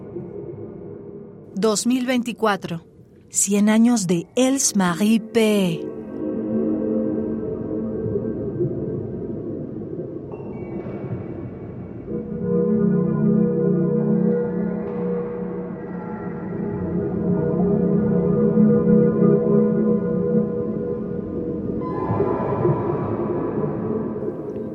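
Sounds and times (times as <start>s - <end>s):
speech: 1.6s - 5.9s
electroacoustic music with dense sustained harmonic drones and shifting tones: 5.1s - 24.7s.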